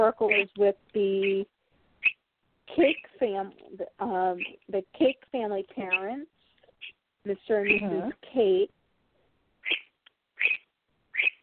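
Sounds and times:
pet bird chirping: 0:00.0 - 0:03.2, 0:04.2 - 0:05.2, 0:05.8 - 0:08.0, 0:09.6 - 0:11.4
speech: 0:00.0 - 0:08.8
tiny bird peep: 0:00.2 - 0:00.6, 0:02.0 - 0:02.2, 0:02.8 - 0:03.1, 0:04.3 - 0:04.7, 0:07.6 - 0:07.9, 0:09.6 - 0:11.4.

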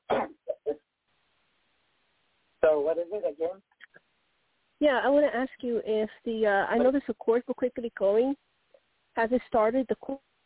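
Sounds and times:
person coughing: 0:00.1 - 0:00.6
speech: 0:02.6 - 0:03.8, 0:04.8 - 0:08.5, 0:09.2 - 0:10.3.

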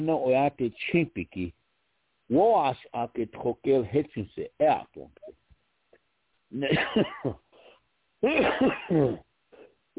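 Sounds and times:
speech: 0:00.0 - 0:01.6, 0:02.3 - 0:05.3, 0:06.5 - 0:07.4, 0:08.2 - 0:09.2
person coughing: 0:06.6 - 0:09.9
throat clearing rasp: 0:07.2 - 0:09.9.

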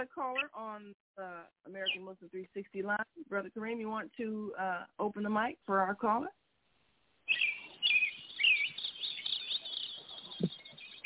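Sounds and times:
speech: 0:00.0 - 0:06.4
birds chirping and warbling: 0:01.8 - 0:02.8, 0:07.3 - 0:11.0.

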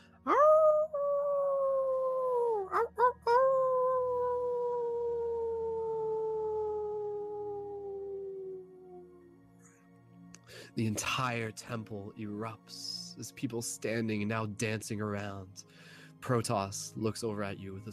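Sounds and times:
person howling like a wolf: 0:00.3 - 0:09.2
speech: 0:10.8 - 0:17.9.

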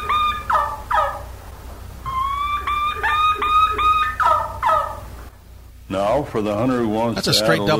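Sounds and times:
wild turkey kee-kee run call: 0:00.0 - 0:01.4, 0:02.0 - 0:05.2
speech: 0:05.9 - 0:07.7.

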